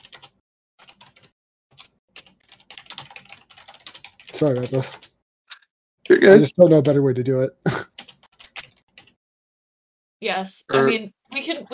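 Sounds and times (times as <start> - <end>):
soft crisp computer keyboard typing: 0.0 - 5.2, 7.8 - 9.2
speech: 4.4 - 5.1, 6.2 - 7.9, 10.2 - 11.7.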